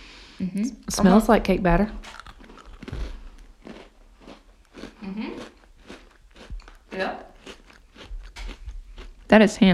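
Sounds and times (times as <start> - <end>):
speech: 0.4 - 2.2, 9.3 - 9.7
small bite-sized birthday cake flavored cookie being bitten and chewed: 2.0 - 9.7.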